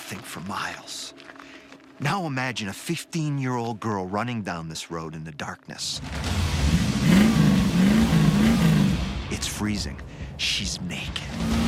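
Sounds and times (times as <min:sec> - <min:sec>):
speech: 0:00.1 - 0:06.5, 0:09.3 - 0:11.6
car engine revving: 0:06.0 - 0:09.6, 0:11.2 - 0:11.6
rushing noise: 0:06.0 - 0:11.6.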